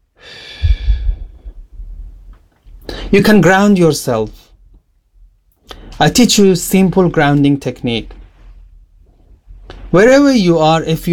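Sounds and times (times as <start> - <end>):
slow breath exhaled during a calming breathing exercise: 0.2 - 1.6
speech: 3.1 - 4.4, 6.0 - 8.2, 9.9 - 11.1.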